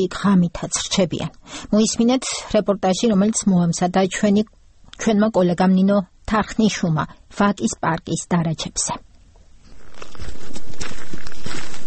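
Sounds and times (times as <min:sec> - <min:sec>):
speech: 0:00.0 - 0:09.1
constant hiss: 0:00.0 - 0:11.8
footsteps crunching along a snow-covered road to a park on a freezing snowy day: 0:09.6 - 0:11.8.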